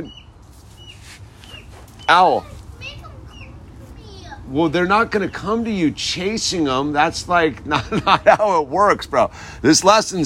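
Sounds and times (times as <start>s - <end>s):
speech: 0.0s - 0.2s, 2.1s - 2.5s, 4.5s - 10.2s
chickens clucking and chirping: 0.0s - 4.4s
steady outdoor noise: 0.0s - 10.2s
laughter: 7.6s - 8.7s.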